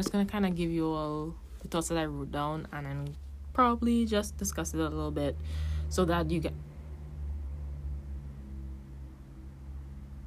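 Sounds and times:
speech: 0:00.0 - 0:06.7
traffic rumble: 0:00.0 - 0:10.2.

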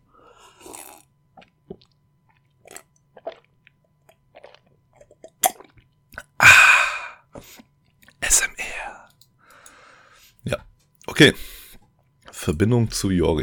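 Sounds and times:
person slurping water from a glass: 0:00.5 - 0:01.9, 0:02.6 - 0:03.6, 0:04.3 - 0:07.7
swallowing water: 0:00.6 - 0:08.2
speech: 0:11.2 - 0:11.5, 0:12.5 - 0:13.4.

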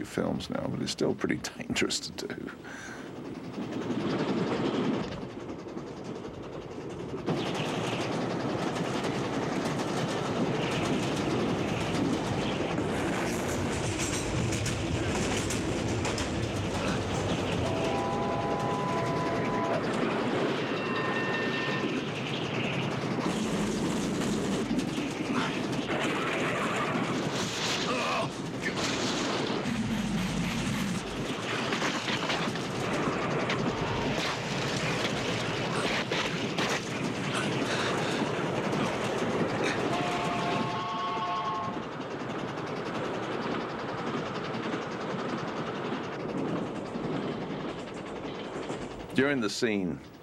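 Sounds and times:
speech: 0:00.0 - 0:03.0, 0:03.6 - 0:04.3, 0:49.3 - 0:50.1
moving train carriages clattering and rattling on rails: 0:00.0 - 0:50.2
high metallic squeals of train: 0:17.5 - 0:22.2.

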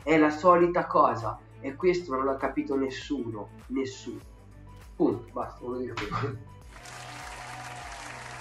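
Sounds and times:
speech: 0:00.1 - 0:04.3, 0:05.0 - 0:06.5
dense steady clapping from a large crowd: 0:06.7 - 0:08.3.

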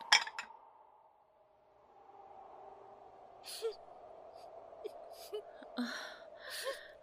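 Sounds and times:
person crying faintly with breathy sobs and gasps: 0:03.5 - 0:03.8, 0:04.8 - 0:07.0.

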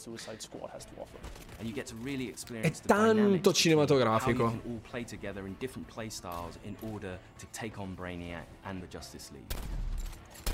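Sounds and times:
speech: 0:00.0 - 0:09.9
gunfire in a shooter video game: 0:09.5 - 0:10.5.

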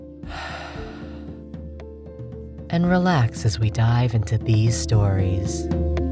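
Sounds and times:
person breathing in and out during a relaxation cue: 0:00.2 - 0:01.4
speech: 0:02.7 - 0:06.0.

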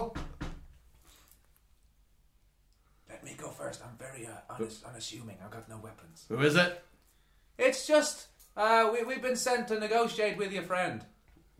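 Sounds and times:
firm knocking on a wooden door: 0:00.0 - 0:00.7
speech: 0:03.7 - 0:06.9, 0:07.6 - 0:11.5.

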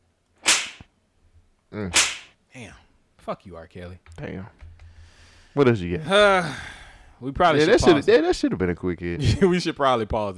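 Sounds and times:
slap sound effect: 0:00.4 - 0:00.9, 0:01.9 - 0:02.4
speech: 0:01.8 - 0:04.6, 0:05.6 - 0:10.3.

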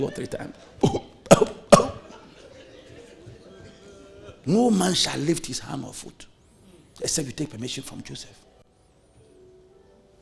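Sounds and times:
speech: 0:00.0 - 0:01.1, 0:04.4 - 0:06.3, 0:07.0 - 0:08.4
person coughing: 0:00.8 - 0:02.0
laughter: 0:02.0 - 0:04.5.

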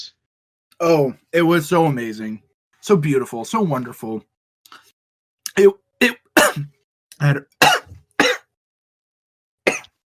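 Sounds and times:
speech: 0:00.8 - 0:04.3, 0:05.6 - 0:07.8
person coughing: 0:06.0 - 0:08.5, 0:09.7 - 0:10.0.

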